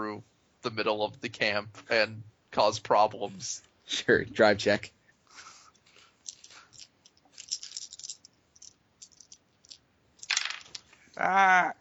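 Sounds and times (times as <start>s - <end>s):
speech: 0.2s - 5.5s, 11.2s - 11.8s
dice dropping on the floor: 6.3s - 10.8s.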